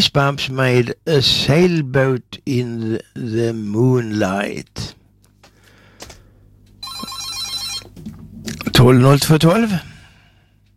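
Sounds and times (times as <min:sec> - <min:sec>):
speech: 0:00.0 - 0:05.0, 0:08.8 - 0:09.9
old-style telephone bell ringing: 0:06.8 - 0:07.9.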